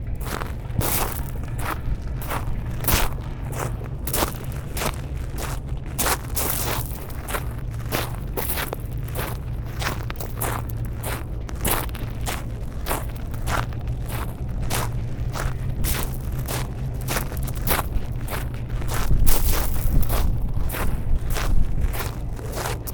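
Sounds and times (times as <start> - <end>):
footsteps walking in London: 0.1 - 22.9.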